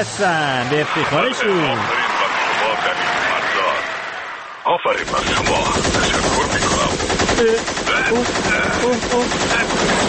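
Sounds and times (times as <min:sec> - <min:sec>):
speech: 0:00.0 - 0:02.2, 0:02.8 - 0:03.4, 0:04.7 - 0:10.0
laughter: 0:00.2 - 0:03.9
rapid machine-gun fire: 0:05.0 - 0:10.0.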